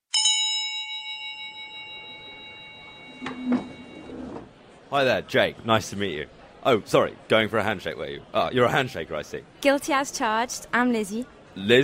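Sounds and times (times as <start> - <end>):
bell struck to start speed dating round: 0.1 - 4.3
speech: 3.2 - 3.7, 4.9 - 11.8.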